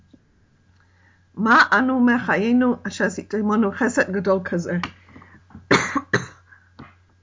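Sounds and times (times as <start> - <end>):
speech: 1.4 - 5.0
harsh coughs from an irritated throat: 5.7 - 6.5.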